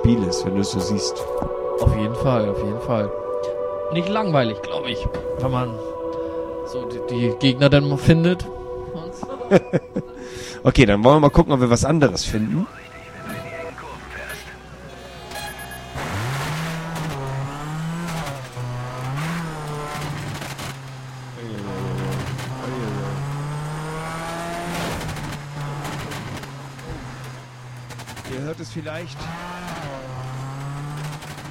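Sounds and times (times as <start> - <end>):
speech: 0.1 - 3.2, 3.9 - 6.0, 6.7 - 8.6, 9.2 - 12.9
laughter: 9.2 - 10.6
rally car engine revving in a racing video game driving over a mountain: 11.4 - 31.5.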